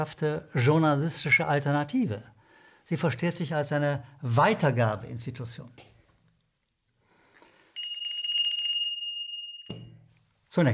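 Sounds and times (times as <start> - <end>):
speech: 0.0 - 5.9, 10.5 - 10.7
bright metallic bell ringing with a rapid trill: 7.8 - 10.1.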